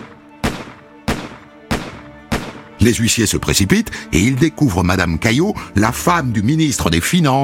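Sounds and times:
revolver gunshots fired in an office: 0.0s - 2.8s
speech: 2.8s - 7.4s.

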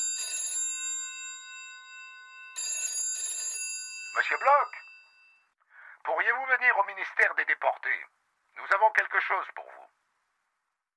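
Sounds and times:
telephone bell ringing: 0.0s - 5.6s
speech: 4.2s - 4.9s, 6.0s - 9.8s.

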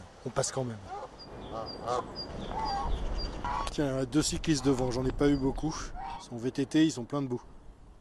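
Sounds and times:
speech: 0.2s - 1.0s, 1.6s - 7.5s
geese honking: 0.9s - 3.7s.

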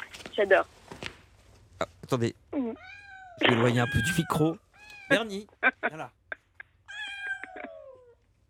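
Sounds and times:
speech: 0.4s - 0.8s, 2.1s - 6.2s
cat meowing close to the microphone: 2.6s - 5.2s, 6.9s - 8.2s.

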